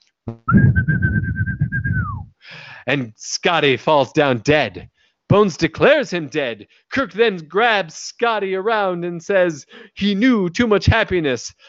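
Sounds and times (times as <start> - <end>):
speech: 0.2 - 1.0, 2.9 - 11.6
low rumbling background: 0.3 - 2.3
person whistling an imitation of a phaser firing: 0.3 - 2.3.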